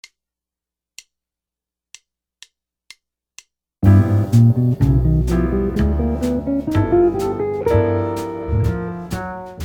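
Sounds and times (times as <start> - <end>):
guitar playing altered scales: 3.8 - 9.5.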